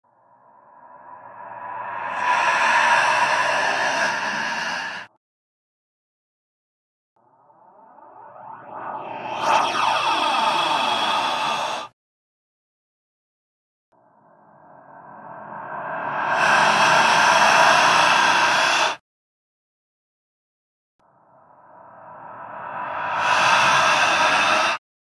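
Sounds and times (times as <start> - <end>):
scary breathing: 0.1 - 5.2, 8.8 - 12.0, 14.4 - 19.0, 21.4 - 24.8.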